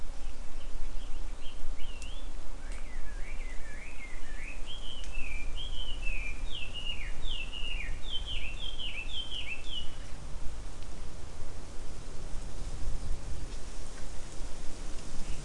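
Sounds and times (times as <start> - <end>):
low rumbling background noise: 0.0 - 15.4
bird whistling calls: 0.9 - 10.2.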